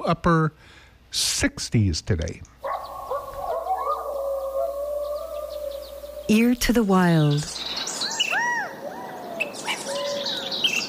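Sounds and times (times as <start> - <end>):
speech: 0.0 - 2.5, 6.3 - 7.8
California quail calling outdoors: 2.6 - 10.8
bird chirps and tweets: 2.6 - 10.8.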